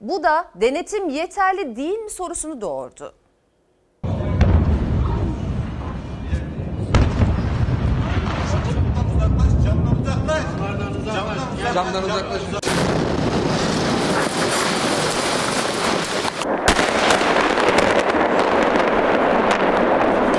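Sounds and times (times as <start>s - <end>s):
speech: 0.0s - 3.2s, 11.1s - 13.4s
explosions at a fireworks factory in Hendek Sakarya: 4.0s - 20.3s
crackling and popping blasts of fireworks factory explosions: 12.6s - 20.3s.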